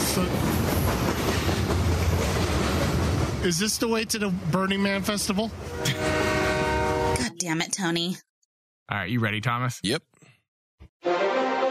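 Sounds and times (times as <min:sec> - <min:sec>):
clickety-clack of wheels over rail joints: 0:00.0 - 0:03.4
train rolling on tracks with low rumble: 0:00.0 - 0:07.3
speech: 0:00.2 - 0:00.5, 0:03.4 - 0:06.2, 0:07.4 - 0:08.3, 0:08.9 - 0:10.1, 0:11.0 - 0:11.3.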